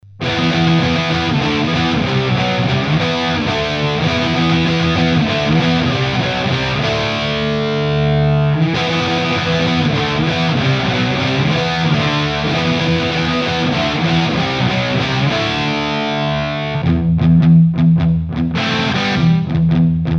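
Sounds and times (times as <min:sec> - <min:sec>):
PRS Custom 22 guitar with Egnater M4 XTC: 0:00.0 - 0:20.1.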